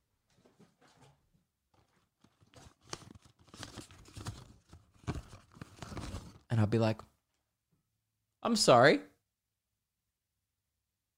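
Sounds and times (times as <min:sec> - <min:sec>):
light paper rustling and crumpling in a classroom during a lesson: 0:01.7 - 0:06.5
speech: 0:06.6 - 0:07.1, 0:08.4 - 0:09.1.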